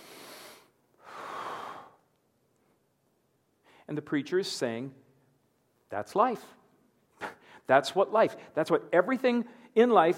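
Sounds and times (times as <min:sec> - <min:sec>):
person taking a deep breath for a stethoscope exam: 0:00.0 - 0:02.0
speech: 0:03.9 - 0:05.0, 0:05.9 - 0:06.6, 0:07.7 - 0:10.1.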